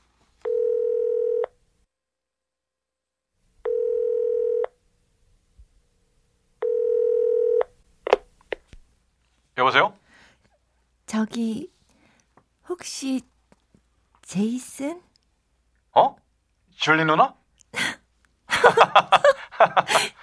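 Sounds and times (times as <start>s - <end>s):
telephone line tones as a call is placed: 0.4s - 1.5s, 3.6s - 4.7s, 6.6s - 7.7s
speech: 11.2s - 11.7s, 12.7s - 13.3s, 14.3s - 15.1s, 16.0s - 16.2s, 16.8s - 17.4s
laughter: 18.5s - 20.2s.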